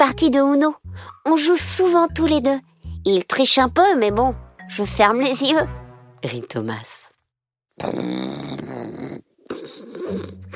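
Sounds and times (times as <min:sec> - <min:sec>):
speech: 0:00.0 - 0:07.0, 0:07.8 - 0:10.5
wolf snoring: 0:07.8 - 0:10.5.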